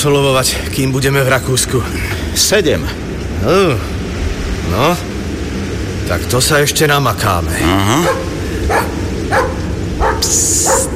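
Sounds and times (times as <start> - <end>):
speech: 0.0 - 4.0, 4.7 - 5.1, 6.1 - 9.5, 10.2 - 10.9
steady rumbling background: 0.0 - 10.9
dog barking in the dark and fog: 8.0 - 10.9.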